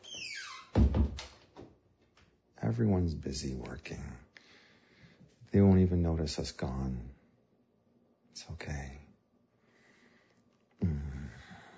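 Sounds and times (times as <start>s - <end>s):
door shutting with a solid low thud: 0.0s - 1.4s
door creaking as it swings: 0.0s - 1.6s
soft knocks of a door settling: 0.7s - 1.7s
speech: 2.7s - 4.3s, 5.5s - 7.2s, 8.4s - 9.0s.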